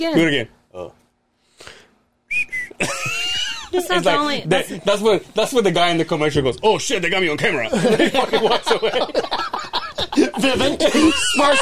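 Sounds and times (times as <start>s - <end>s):
speech: 0.0s - 1.0s, 3.7s - 11.6s
man whistling short bright notes: 2.3s - 2.8s
laughter: 2.8s - 3.8s, 7.7s - 11.6s.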